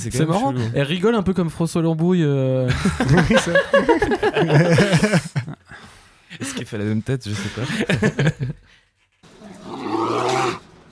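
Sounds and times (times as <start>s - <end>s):
speech: 0.0s - 5.4s, 6.4s - 8.7s
laughter: 2.6s - 8.8s
low bear grunt: 9.4s - 10.6s
bear roaring: 9.4s - 10.7s.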